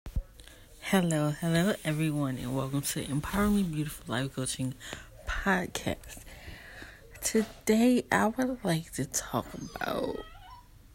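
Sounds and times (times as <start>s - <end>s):
speech: 0.9s - 6.3s, 7.2s - 10.3s
dog whimpering: 9.4s - 10.8s.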